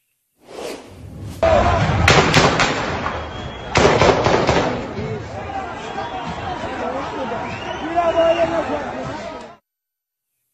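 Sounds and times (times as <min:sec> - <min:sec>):
gunshots fired by forces and snipers at a crowd: 0:01.4 - 0:05.0
crowd shouting and crying out in panic: 0:01.4 - 0:09.6.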